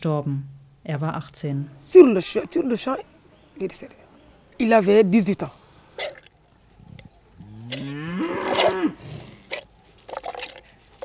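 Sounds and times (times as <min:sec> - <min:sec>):
speech: 0:00.0 - 0:04.0, 0:04.6 - 0:06.2
cow mooing: 0:07.4 - 0:09.0
milk squirting and splashing from cows being milked: 0:07.7 - 0:11.0.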